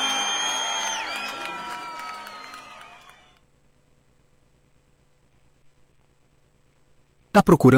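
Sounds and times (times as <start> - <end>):
large crowd clapping: 0.0 - 3.4
shrill screams from a large crowd: 0.0 - 3.4
whistles from a large crowd: 0.0 - 3.4
speech: 7.4 - 7.7.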